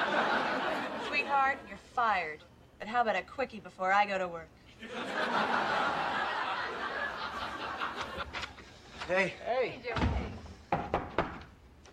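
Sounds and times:
laughter: 0.0s - 1.7s, 4.8s - 9.3s
speech: 1.5s - 5.8s, 9.1s - 10.2s
knocking on a wooden door: 9.9s - 11.5s.

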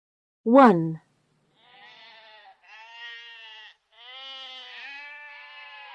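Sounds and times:
speech: 0.4s - 1.0s
sheep bleating: 1.5s - 5.9s.

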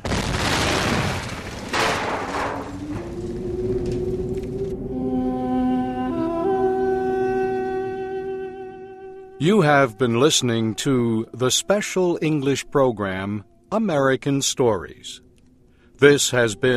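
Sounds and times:
huge airship exploding with deep rumbling booms: 0.0s - 4.6s
sustained tonal notes: 2.6s - 11.9s
speech: 9.4s - 15.2s, 16.0s - 16.7s.

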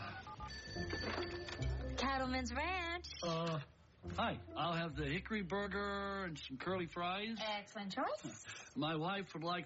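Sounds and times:
telephone ringing after speed-dialing a restaurant line: 0.1s - 2.4s
speech: 2.2s - 9.6s.

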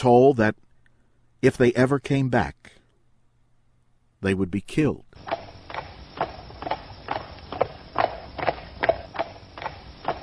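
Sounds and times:
speech: 0.0s - 0.6s, 1.4s - 2.8s, 4.2s - 5.4s
horses' hooves clip-clopping at a slow walk as riders leave town: 5.2s - 10.2s.

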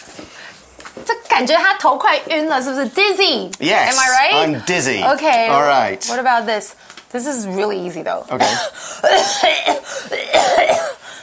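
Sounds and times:
speech: 1.4s - 10.9s
person coughing on purpose while acting out an illness: 8.3s - 11.0s.

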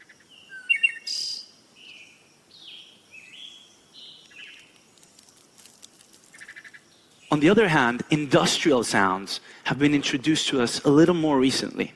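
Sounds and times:
birds chirping outside a window: 0.0s - 5.6s, 6.2s - 8.1s
speech: 7.3s - 11.9s.

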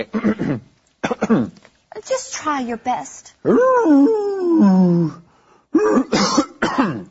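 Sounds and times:
speech: 0.0s - 0.7s, 1.3s - 5.2s
raspy coughing or throat clearing bursts: 0.0s - 1.6s, 5.7s - 7.0s
person attempting a wolf-like howl: 3.4s - 5.2s.

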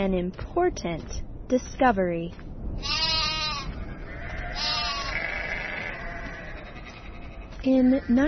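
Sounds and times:
speech: 0.0s - 3.0s, 7.6s - 8.2s
sheep bleating: 2.8s - 8.2s.

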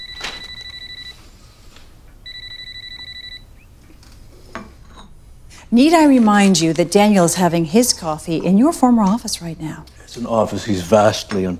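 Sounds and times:
telephone ringing with trilling electronic tone: 0.0s - 1.2s, 2.2s - 3.6s
speech: 5.7s - 11.5s.

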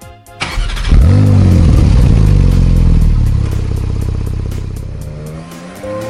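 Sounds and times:
2017 Porsche 911S Cabriolet sports car engine starting and revving: 0.5s - 6.0s
2017 Porsche 911S Cabriolet engine rumbling idle: 0.6s - 5.2s.

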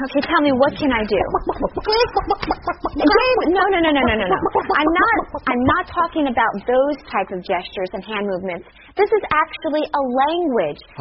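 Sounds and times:
speech: 0.0s - 10.9s
person imitating a clucking chicken: 0.5s - 5.5s.

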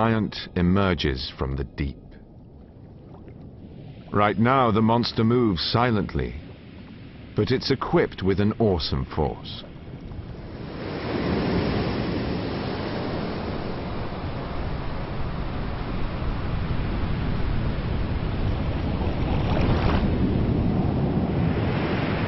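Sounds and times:
speech: 0.0s - 2.0s, 4.1s - 6.4s, 7.4s - 9.7s
large storm-swell ocean waves breaking on South Pacific islands: 3.6s - 22.2s.

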